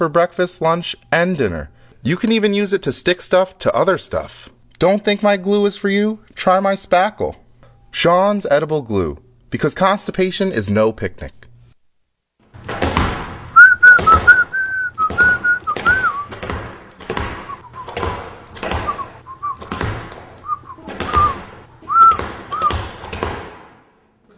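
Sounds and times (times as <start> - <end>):
speech: 0.0 - 11.4
thudding footfalls of someone skipping: 12.5 - 23.9
person whistling while skipping: 13.6 - 16.3, 18.9 - 19.7, 20.4 - 22.8.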